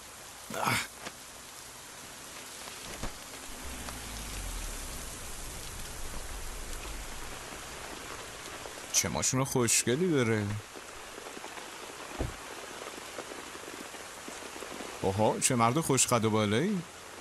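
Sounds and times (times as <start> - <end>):
steady rain pattering on surfaces: 0.0 - 17.1
speech: 0.5 - 0.9, 9.0 - 10.7, 15.1 - 17.0
sharp splash or thud: 2.9 - 4.6
low rumble: 3.0 - 9.0.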